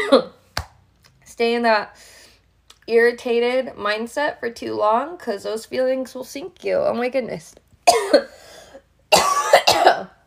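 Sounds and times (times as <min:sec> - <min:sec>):
person coughing: 0:00.0 - 0:00.4, 0:07.9 - 0:10.2
speech: 0:00.0 - 0:00.4, 0:01.4 - 0:02.2, 0:02.9 - 0:08.4
person clearing throat: 0:07.9 - 0:08.3, 0:09.1 - 0:10.2.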